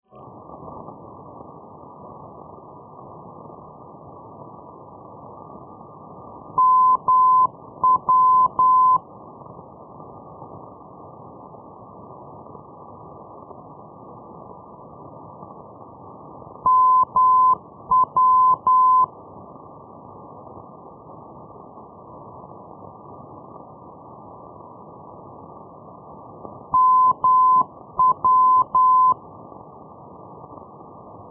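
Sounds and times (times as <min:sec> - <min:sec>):
Berlin-Blankenfelde NDB radio beacon signal on medium wave: 0:06.6 - 0:09.0, 0:16.6 - 0:19.1, 0:26.7 - 0:29.2.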